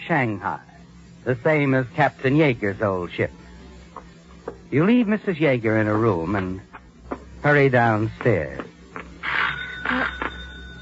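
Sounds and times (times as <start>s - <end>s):
speech: 0.1s - 3.4s, 4.7s - 6.7s, 7.4s - 8.7s
doorbell ringing in bright tonal chimes: 9.5s - 10.7s.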